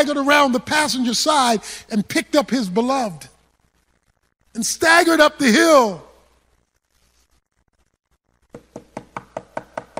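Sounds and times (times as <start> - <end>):
speech: 0.0 - 3.3, 4.5 - 6.1
rapid knocking on a door: 8.5 - 9.9.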